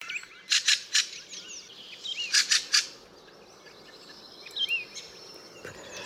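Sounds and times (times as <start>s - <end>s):
bird chirping and trilling: 0.0s - 6.0s.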